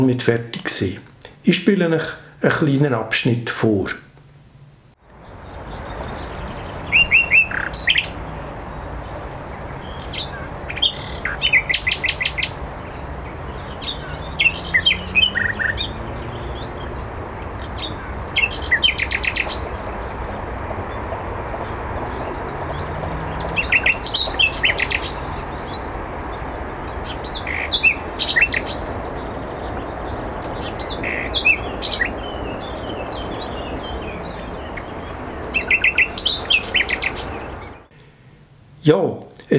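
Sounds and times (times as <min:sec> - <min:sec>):
speech: 0:00.0 - 0:04.0
steady outdoor hiss: 0:00.0 - 0:39.5
common nightingale singing: 0:05.0 - 0:38.3.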